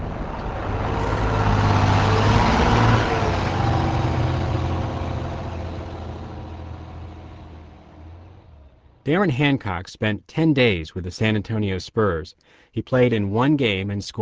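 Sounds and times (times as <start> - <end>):
heavy vehicle engine droning: 0.0 - 9.8
road rumble: 0.0 - 14.1
speech: 9.1 - 14.1.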